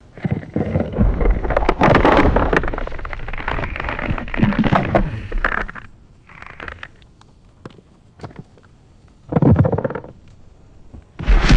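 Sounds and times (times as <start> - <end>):
massive ice creaking and cracking: 0.3 - 7.0, 11.2 - 11.5.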